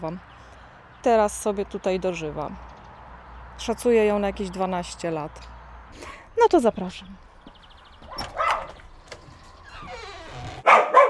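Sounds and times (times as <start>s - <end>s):
speech: 0.0s - 0.3s, 1.0s - 2.7s, 3.6s - 7.3s
dog barking excitedly in greeting: 8.1s - 8.8s, 10.6s - 11.0s.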